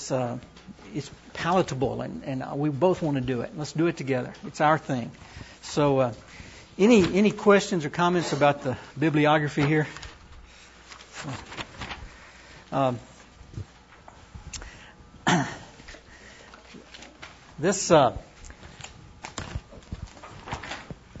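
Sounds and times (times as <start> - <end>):
speech: 0.1 - 10.0, 11.2 - 11.5, 12.7 - 13.7, 17.6 - 18.3
paper handouts being shuffled and passed around: 6.4 - 7.7, 9.4 - 12.5, 16.5 - 21.1.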